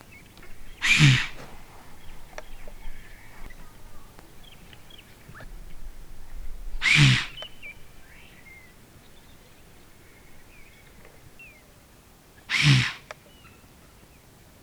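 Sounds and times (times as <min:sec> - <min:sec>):
Kobus ellipsiprymnus waterbuck snorting alarm calls at spotting of a researcher: 0:00.4 - 0:11.4.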